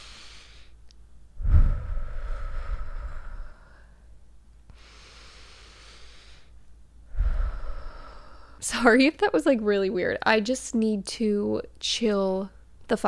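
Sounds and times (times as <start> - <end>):
deep breath taken slowly: 0.0 - 0.8, 1.4 - 4.1, 4.7 - 8.6
speech: 8.6 - 13.0.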